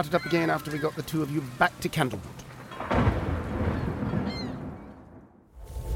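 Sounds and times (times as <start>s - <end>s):
speech: 0.0s - 2.4s
deep continuous thunder in a thunderstorm: 2.7s - 5.9s.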